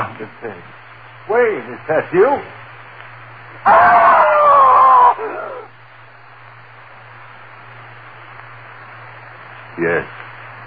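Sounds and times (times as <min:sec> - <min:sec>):
speech: 0:00.2 - 0:02.6, 0:03.6 - 0:04.3, 0:09.8 - 0:10.2
man screaming in terror: 0:03.7 - 0:05.7.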